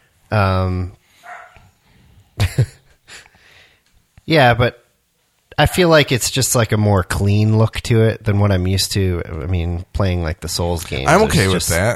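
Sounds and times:
speech: 0.3s - 1.0s, 4.3s - 4.8s, 5.6s - 11.9s
dog barking: 1.2s - 1.6s.

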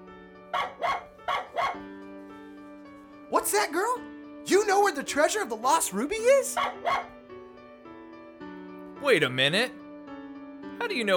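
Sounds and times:
small puppy barking: 0.5s - 1.9s, 6.4s - 7.2s
speech: 3.4s - 7.1s, 9.0s - 9.8s, 10.8s - 11.1s.

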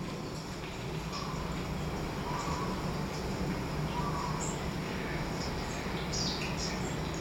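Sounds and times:
hissing outdoor garden ambience: 0.0s - 7.1s
faint bird chirps in a garden: 1.1s - 3.2s, 3.9s - 7.1s.

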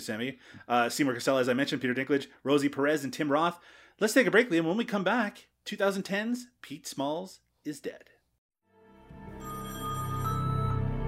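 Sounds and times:
speech: 0.0s - 8.1s
telephone ringing with a buzzing electronic tone: 9.4s - 10.9s.

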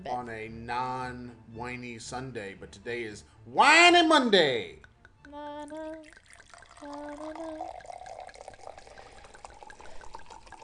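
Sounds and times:
speech: 0.0s - 8.2s
person singing a short vocal phrase: 4.8s - 8.4s
champagne pouring and fizzing: 5.7s - 10.6s.

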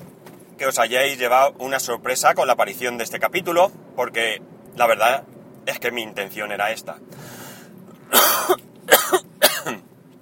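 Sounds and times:
speech: 0.6s - 7.3s
harsh coughs with throat clearing: 8.1s - 9.8s.

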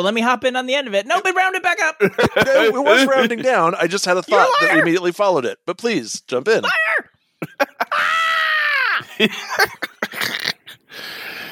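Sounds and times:
speech: 0.0s - 6.9s, 9.2s - 9.9s
laughter: 2.0s - 4.8s, 7.4s - 8.3s, 9.0s - 10.3s
breathy yelps: 4.3s - 4.9s, 6.6s - 9.2s
person screaming: 4.3s - 4.9s, 6.6s - 7.1s, 7.7s - 9.2s.

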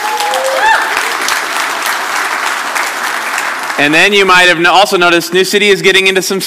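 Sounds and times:
people whooping: 0.0s - 1.4s
audience at a sermon applauding: 0.0s - 4.6s
speech: 3.8s - 6.4s.

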